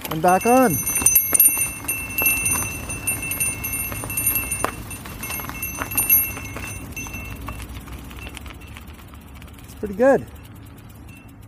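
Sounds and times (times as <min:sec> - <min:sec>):
bell ringing: 0:00.0 - 0:07.7
low rumbling background: 0:00.0 - 0:11.4
speech: 0:00.1 - 0:01.0, 0:09.8 - 0:10.4.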